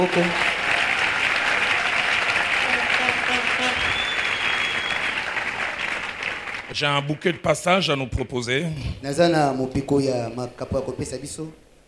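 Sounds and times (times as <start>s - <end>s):
speech: 0.0s - 0.5s, 6.7s - 11.6s
audience applause at an evening talk: 0.0s - 6.8s.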